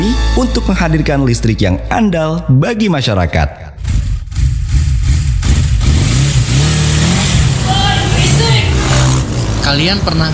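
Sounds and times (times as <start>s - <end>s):
speech: 0.4s - 4.0s, 9.7s - 10.3s
loud vehicle exhaust revving: 3.7s - 10.3s.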